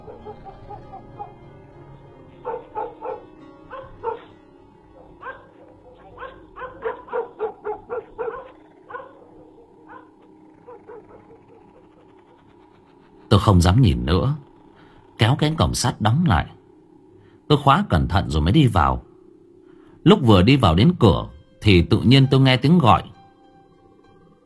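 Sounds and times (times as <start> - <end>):
dogs in a small alley barking loudly: 0.0 - 1.4, 2.3 - 13.2
speech: 13.4 - 14.4, 15.2 - 16.6, 17.5 - 19.1, 20.0 - 23.1.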